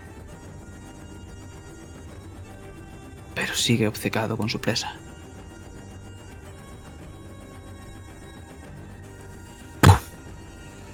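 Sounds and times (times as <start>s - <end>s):
speech: 3.4s - 5.1s
heavy punch landing in a wrestling fight: 9.8s - 10.1s.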